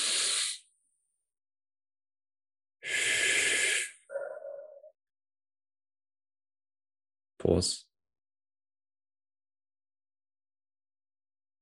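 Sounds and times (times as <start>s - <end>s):
slow deep breathing: 0.0s - 0.6s, 2.8s - 4.7s
speech: 7.4s - 7.9s.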